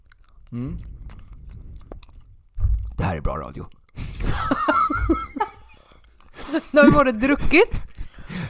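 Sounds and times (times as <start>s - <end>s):
wet chewing of gummy vitamin candy: 0.0s - 8.3s
speech: 0.5s - 1.0s, 3.1s - 5.4s, 6.5s - 7.9s
low rumble: 0.8s - 3.2s
louder thump: 2.6s - 3.0s
laughter: 4.0s - 5.7s.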